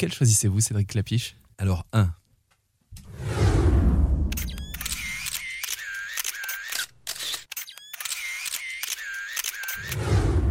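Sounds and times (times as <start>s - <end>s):
speech: 0.0s - 2.2s
soft whooshing swells: 3.0s - 4.6s
camera shutter clicks: 4.3s - 10.0s.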